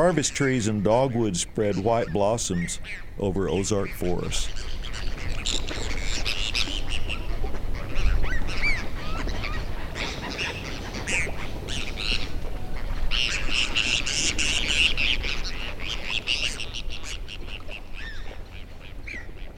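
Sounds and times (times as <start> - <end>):
speech: 0.0 - 5.7
large flock of migrating gulls calling off a highway: 0.0 - 19.5.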